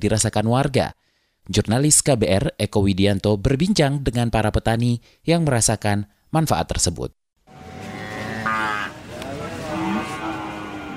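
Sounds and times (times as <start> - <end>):
speech: 0.0 - 7.7
cows mooing in a shed: 7.5 - 10.9
murmur of other animals in a cow shed: 7.6 - 10.9.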